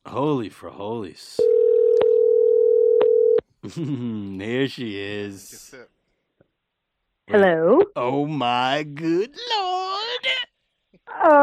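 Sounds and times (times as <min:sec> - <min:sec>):
speech: 0:00.1 - 0:01.6, 0:03.6 - 0:05.9, 0:07.3 - 0:09.8
ringback tone of an unanswered phone call: 0:01.4 - 0:03.4.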